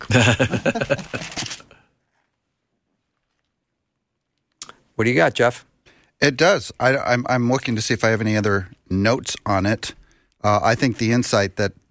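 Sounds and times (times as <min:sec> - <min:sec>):
speech: 0:00.0 - 0:00.9, 0:05.0 - 0:11.8
laughter: 0:00.0 - 0:01.7
crisp rustling of book pages being flipped: 0:00.8 - 0:02.4.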